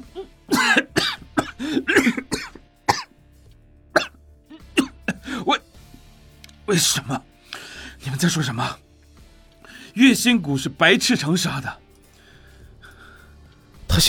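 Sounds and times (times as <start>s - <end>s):
man's breaths and strained throat sounds: 0.0s - 3.1s, 4.0s - 6.0s
weakened man coughing in bed: 0.0s - 3.1s, 4.0s - 5.6s
speech: 6.7s - 7.3s, 8.0s - 8.8s, 10.0s - 11.8s.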